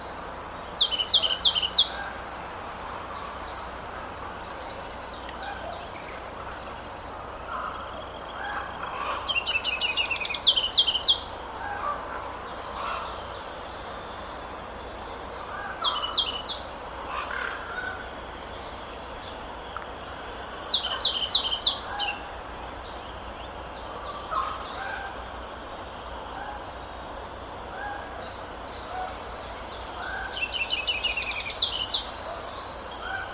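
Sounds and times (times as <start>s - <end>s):
ruby-crowned kinglet song: 0.0s - 26.0s, 27.9s - 33.3s
steady low outdoor hiss: 0.0s - 33.3s.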